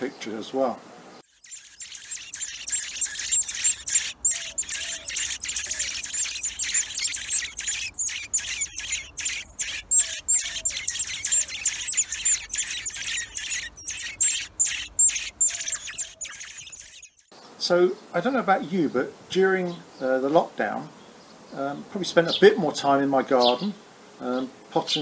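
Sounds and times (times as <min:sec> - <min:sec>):
speech: 0:00.0 - 0:00.9, 0:17.7 - 0:25.0
flock of house sparrows chirping and squabbling: 0:01.3 - 0:17.3, 0:23.3 - 0:23.7.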